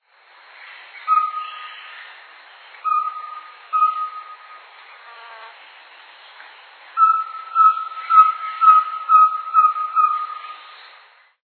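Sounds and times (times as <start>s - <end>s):
corneteiro-da-mata bird singing: 1.0s - 2.0s, 2.8s - 5.0s, 7.0s - 10.7s.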